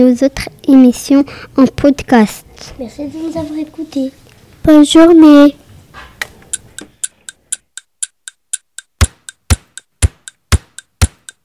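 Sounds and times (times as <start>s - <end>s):
speech: 0.0s - 5.6s
faint noise: 0.0s - 11.4s
clock ticking: 6.5s - 11.4s.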